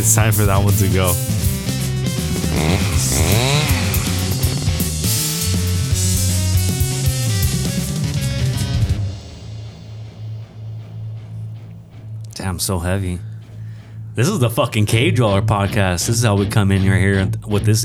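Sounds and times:
speech: 0.0 - 1.5, 2.6 - 3.6, 12.4 - 13.3, 14.2 - 17.8
chainsaw sound effect roaring: 0.0 - 9.0.

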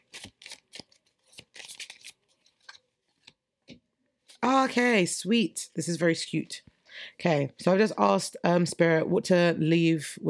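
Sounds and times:
tarot cards being shuffled and drawn: 0.0 - 3.4
speech: 4.5 - 10.2.

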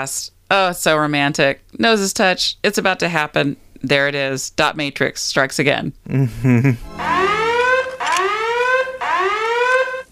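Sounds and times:
speech: 0.0 - 7.3
electronic alarm wailing: 6.8 - 10.1.

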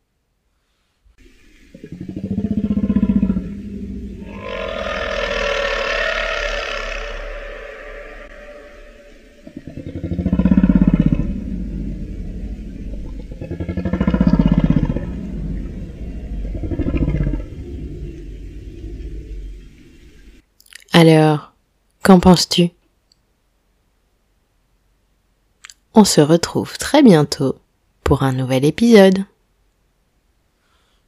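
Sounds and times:
humpback whale singing: 1.2 - 20.4
speech: 22.1 - 22.8, 26.0 - 29.3.

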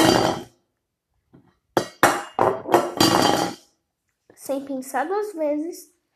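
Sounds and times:
metal cooking pot crashing and clattering on a hard floor: 0.0 - 0.5, 1.8 - 3.7
speech: 4.5 - 5.9.

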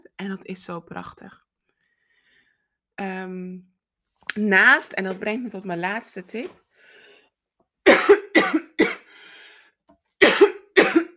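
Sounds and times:
speech: 0.2 - 1.5, 3.0 - 6.6
short wheezy breath: 6.7 - 7.4, 9.0 - 9.8
woman coughing harshly during a wedding ceremony speech: 7.9 - 9.1, 10.2 - 11.1.

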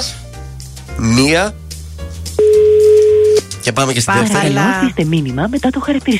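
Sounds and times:
speech: 1.0 - 1.6, 3.6 - 6.1
electronic phone ringback tone on outgoing call: 2.4 - 3.4.

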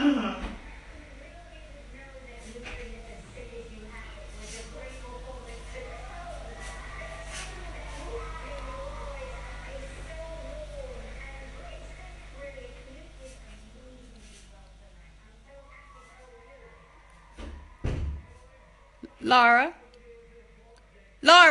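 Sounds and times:
murmur of indistinct voices: 0.0 - 21.4
door closing with a solid thud: 17.4 - 18.4
speech: 19.3 - 19.8, 21.2 - 21.4.

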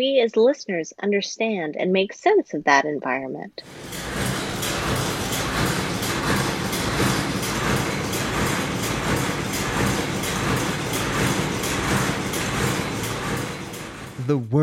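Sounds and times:
speech: 0.0 - 4.2, 14.3 - 14.6
train wheels clickety-clack over track joints: 3.6 - 14.3
train rumbling on rails: 3.6 - 14.6.

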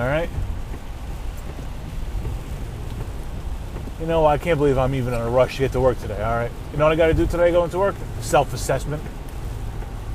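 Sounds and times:
deep constant road rumble inside a car: 0.0 - 10.1
steady rain hissing on a car being driven: 0.0 - 10.1
speech: 4.0 - 9.2.

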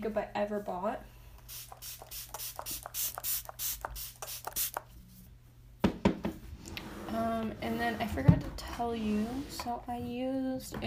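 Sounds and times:
speech: 0.0 - 3.2, 7.2 - 10.8
makeup setting spray bottle spritzing: 1.4 - 4.9.

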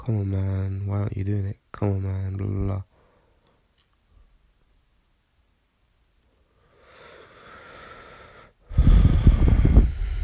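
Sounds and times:
speech: 0.0 - 2.9
long deep breath with a snorting edge: 2.9 - 3.6, 6.4 - 10.2.

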